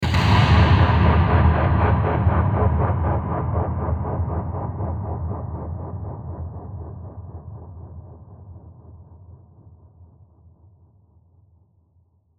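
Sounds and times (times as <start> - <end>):
mysterious dark drum hit with delay, accent transition: 0.0 - 7.1.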